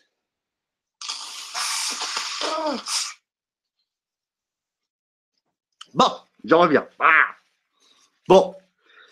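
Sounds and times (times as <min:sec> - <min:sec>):
person with a cold blowing their nose: 0:01.0 - 0:03.3
speech: 0:02.6 - 0:03.1, 0:06.0 - 0:07.3, 0:08.3 - 0:08.6.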